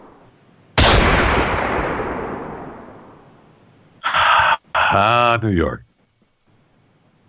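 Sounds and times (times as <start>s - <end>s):
single loud gunshot with long echo: 0.8s - 2.9s
speech: 5.0s - 5.9s.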